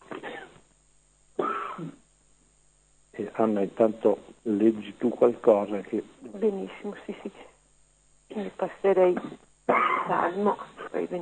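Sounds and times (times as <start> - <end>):
faint hum: 0.0 - 11.2
person coughing: 0.1 - 0.6, 1.4 - 2.0, 8.3 - 10.4
speech: 3.4 - 7.5, 8.4 - 11.2.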